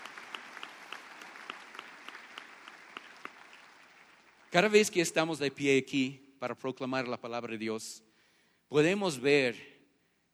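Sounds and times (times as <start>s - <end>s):
audience applauding: 0.0s - 5.1s
speech: 4.6s - 8.1s, 8.7s - 9.7s.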